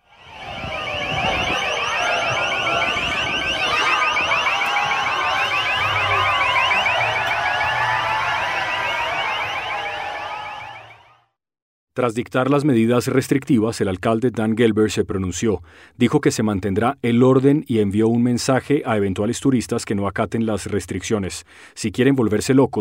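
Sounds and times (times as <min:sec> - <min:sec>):
street noise rumble during a riot: 0:00.0 - 0:10.6
electronic siren during a street riot: 0:00.0 - 0:11.2
speech: 0:12.0 - 0:22.8.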